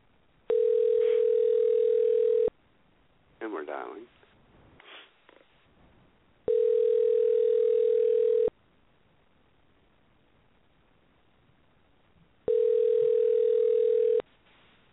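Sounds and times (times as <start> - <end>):
telephone ringing tones of call to radio call-in line: 0.5 - 2.5, 6.5 - 8.5, 12.5 - 14.2.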